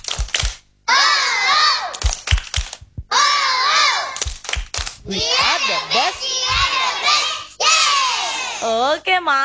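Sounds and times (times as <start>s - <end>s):
children's hand claps in a spirit clap routine: 0.0s - 0.6s, 1.9s - 3.0s, 4.2s - 5.7s
group of children chanting a spirit clap routine: 0.9s - 2.0s, 3.1s - 4.2s, 5.1s - 8.6s
speech: 5.1s - 5.8s, 8.6s - 9.4s.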